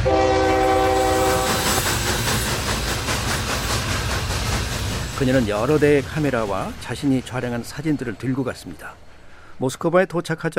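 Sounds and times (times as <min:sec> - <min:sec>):
Trans-Siberian train horn blaring: 0:00.0 - 0:01.8
Trans-Siberian train rumbling on rails in the Soviet Union: 0:00.0 - 0:09.9
speech: 0:05.2 - 0:09.0, 0:09.6 - 0:10.5.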